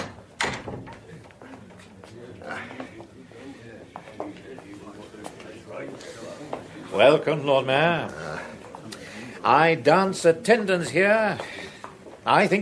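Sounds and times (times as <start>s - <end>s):
door shutting with a firm thud: 0.0s - 1.1s
indistinct voices: 1.0s - 12.6s
speech: 7.0s - 8.2s, 9.5s - 11.6s, 12.2s - 12.6s.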